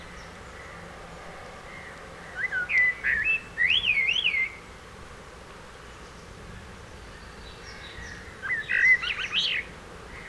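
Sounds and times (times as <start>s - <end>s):
common blackbird Turdus merula song: 0.0s - 0.8s, 1.4s - 4.6s, 5.9s - 10.2s.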